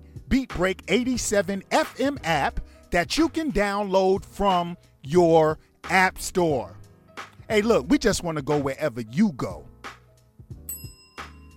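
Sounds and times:
speech: 0.3s - 6.8s, 7.5s - 9.7s
bright bell ringing: 10.7s - 11.5s.

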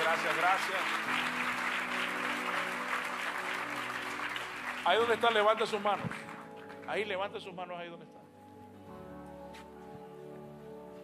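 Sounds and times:
church audience applauding: 0.0s - 7.4s
speech: 0.2s - 1.7s, 4.8s - 6.3s, 6.9s - 8.2s.

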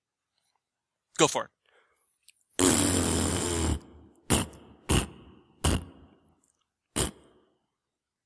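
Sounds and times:
speech: 1.2s - 1.6s
vocal imitation of a fart: 2.6s - 6.2s, 6.9s - 7.4s.

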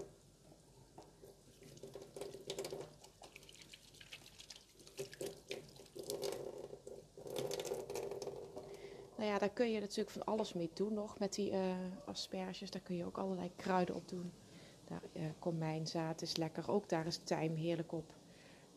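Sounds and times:
running tap water: 1.0s - 8.9s
speech: 9.2s - 18.2s.

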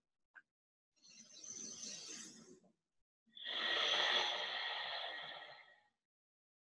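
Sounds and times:
ujjayi ocean breathing through the nose during yoga practice: 3.4s - 5.9s.

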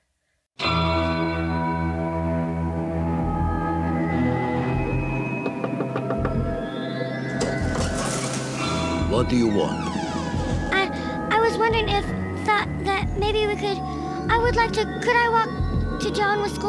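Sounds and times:
ominous tolling bells sound effect: 0.6s - 12.3s
speech: 9.2s - 9.9s, 11.7s - 16.6s.

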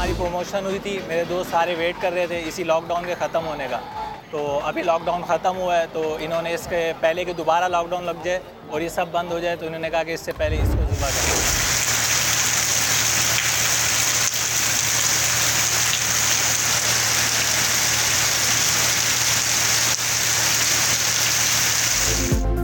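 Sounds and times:
speech: 0.2s - 11.2s
steady heavy rain: 10.4s - 22.4s.

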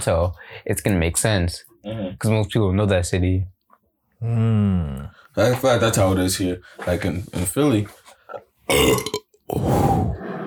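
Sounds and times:
speech: 0.0s - 3.6s, 4.2s - 10.1s
loud raspy burp: 8.7s - 9.7s.

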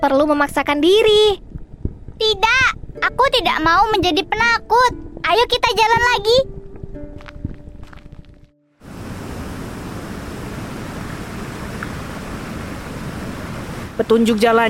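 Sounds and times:
speech: 0.0s - 1.4s, 2.2s - 6.6s, 14.0s - 14.6s
roar of a rushing waterfall: 8.8s - 14.2s.

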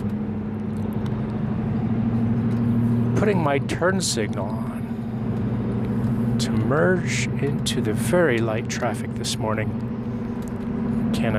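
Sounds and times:
car engine accelerating onto a mountain highway: 0.0s - 11.3s
road noise: 0.0s - 11.3s
speech: 3.2s - 4.7s, 6.4s - 9.9s, 11.1s - 11.3s.

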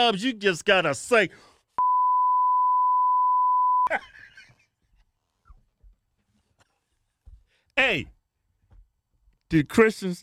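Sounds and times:
speech: 0.0s - 1.5s, 3.9s - 4.1s, 7.8s - 8.1s, 9.5s - 10.2s
censor bleep: 1.8s - 3.9s.

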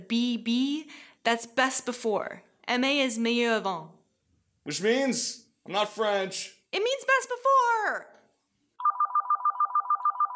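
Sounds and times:
speech: 0.1s - 4.0s, 4.7s - 8.1s
telephone ringing with an electronic trill: 8.8s - 10.3s.

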